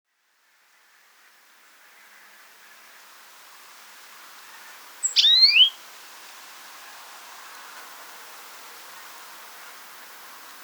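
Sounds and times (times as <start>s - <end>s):
quiet background hiss: 0.5s - 10.6s
European greenfinch Chloris chloris call: 5.0s - 5.8s.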